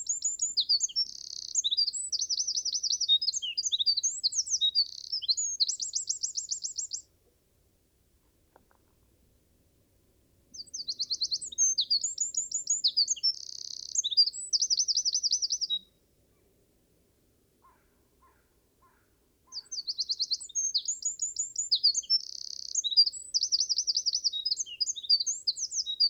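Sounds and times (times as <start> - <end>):
Eurasian wren Troglodytes troglodytes singing trills and chattering notes: 0.0 - 7.0, 10.6 - 15.9, 17.6 - 26.0.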